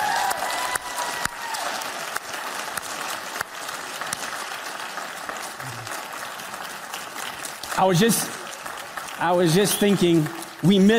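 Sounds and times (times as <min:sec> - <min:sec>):
audience applause of many hands clapping: 0:00.0 - 0:10.9
brief louder burst of crowd noise: 0:00.0 - 0:10.9
speech: 0:07.8 - 0:08.4, 0:09.2 - 0:10.9.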